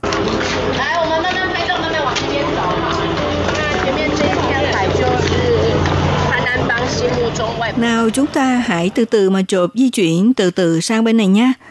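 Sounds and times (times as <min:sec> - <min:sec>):
low engine-like hum: 0:00.0 - 0:09.0
dense crowd of tourists chattering at a small narrow seaport: 0:00.0 - 0:09.3
speech: 0:07.0 - 0:11.6.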